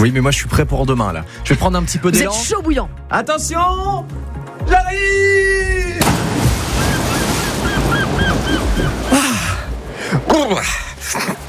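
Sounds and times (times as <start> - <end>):
speech: 0.0 - 6.0, 10.2 - 11.4
steady wash of ocean surf: 6.0 - 10.3
seagulls crying: 6.6 - 9.7.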